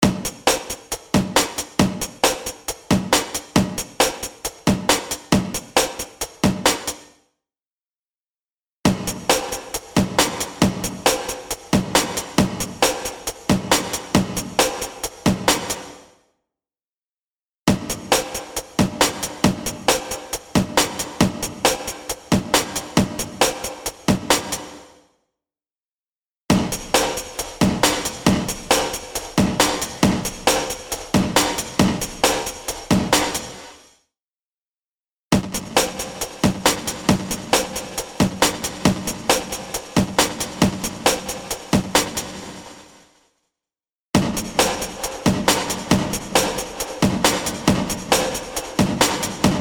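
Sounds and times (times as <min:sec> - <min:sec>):
drum loop recorded in a wet drum room: 0:00.0 - 0:07.0, 0:08.9 - 0:16.0, 0:17.7 - 0:24.8, 0:26.5 - 0:33.8, 0:35.3 - 0:42.7, 0:44.2 - 0:49.5.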